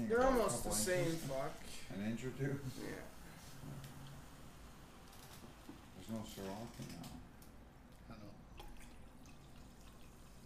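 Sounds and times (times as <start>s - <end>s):
speech: 0.1s - 3.9s, 6.1s - 7.3s
liquid pouring and splashing into a cup: 8.5s - 10.4s.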